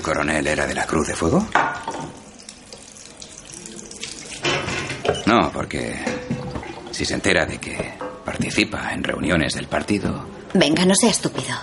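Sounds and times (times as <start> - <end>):
speech: 0.0 - 2.2, 5.3 - 6.2, 7.0 - 11.6
water running from a tap as hands are washed after a surgical intervention: 0.0 - 7.4.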